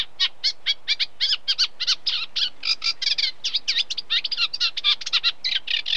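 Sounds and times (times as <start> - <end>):
unmated male Eurasian Reed Warbler singing: 0.0 - 5.9.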